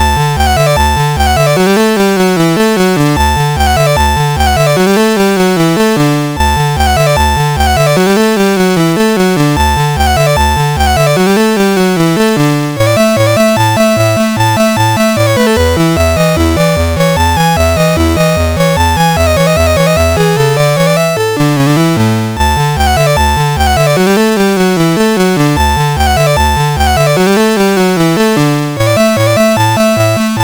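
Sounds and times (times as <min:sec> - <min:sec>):
musette tune on a MOS6581R4 sound chip: 0:00.0 - 0:30.4.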